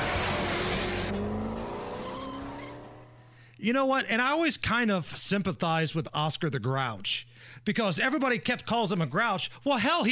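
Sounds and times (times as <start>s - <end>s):
tires squealing: 0.0s - 3.1s
car speeding off: 0.0s - 3.4s
rising car engine whine: 0.0s - 3.4s
speech: 3.6s - 10.1s.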